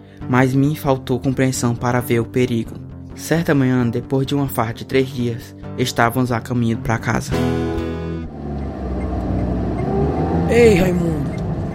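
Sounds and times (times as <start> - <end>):
speech: 0.3 - 7.6, 10.5 - 11.3
car engine humming while driving: 8.2 - 11.7.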